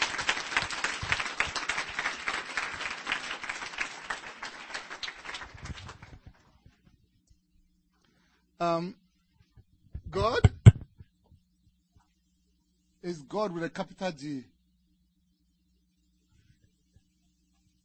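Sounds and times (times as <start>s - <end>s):
audience applause: 0.0s - 6.2s
speech: 8.6s - 9.0s, 10.1s - 10.5s, 13.1s - 14.5s.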